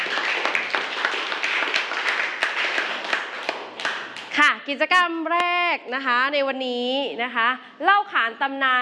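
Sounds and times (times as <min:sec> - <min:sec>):
group of students clapping in a classroom: 0:00.0 - 0:04.4
speech: 0:04.7 - 0:08.7.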